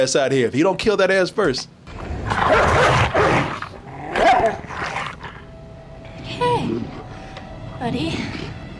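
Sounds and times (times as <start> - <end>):
speech: 0.0 - 3.5, 7.8 - 8.4
dog snarling and barking aggressively: 2.0 - 5.4.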